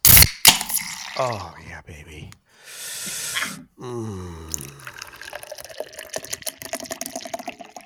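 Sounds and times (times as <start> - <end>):
drink pouring from a can with bubbly gurgles: 0.5 - 1.4, 4.5 - 7.8
speech: 1.2 - 4.7.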